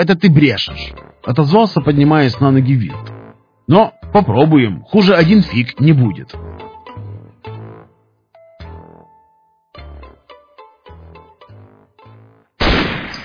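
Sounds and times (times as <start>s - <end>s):
speech: 0.0s - 3.1s, 3.7s - 6.6s
AK-103 rifle firing a single round at a wooden pole: 12.6s - 13.2s.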